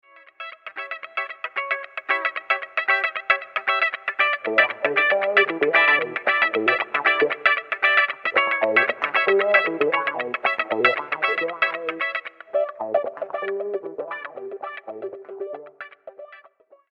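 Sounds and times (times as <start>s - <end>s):
clean guitar rhythm: 0.0s - 16.9s.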